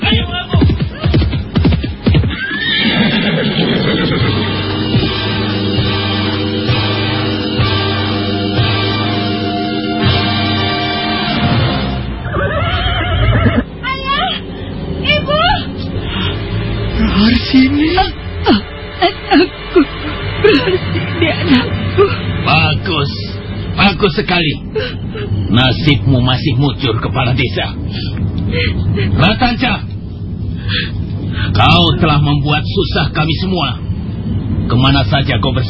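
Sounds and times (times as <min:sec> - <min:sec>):
pounding hooves of horses: 0:00.0 - 0:02.7
sharp horse neighs: 0:02.2 - 0:04.5, 0:12.2 - 0:13.7
long loud sustained sound effect: 0:03.4 - 0:35.6
laughter: 0:12.2 - 0:13.7, 0:19.0 - 0:22.1
speech: 0:24.2 - 0:29.8, 0:30.7 - 0:33.8, 0:34.7 - 0:35.6.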